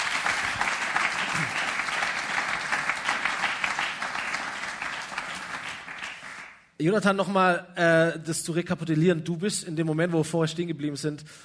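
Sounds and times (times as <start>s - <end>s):
church audience applauding: 0.0s - 6.6s
speech: 6.8s - 11.4s.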